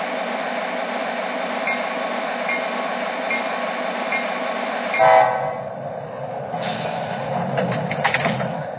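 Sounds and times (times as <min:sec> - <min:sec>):
passenger train rumbling at a station platform: 0:00.0 - 0:08.7
short horn-like train tone: 0:04.9 - 0:05.7
light clanks and rattles of a train: 0:06.6 - 0:08.7.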